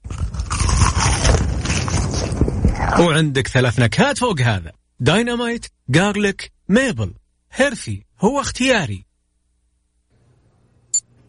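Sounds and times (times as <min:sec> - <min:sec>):
someone biting into crispy fried chicken fillet: 0:00.0 - 0:03.0
speech: 0:03.0 - 0:09.1.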